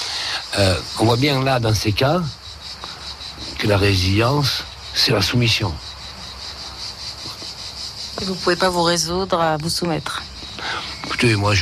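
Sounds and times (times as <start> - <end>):
cicadas singing: 0.0 - 11.5
speech: 0.5 - 2.4, 3.6 - 5.9, 8.2 - 10.3, 11.2 - 11.5.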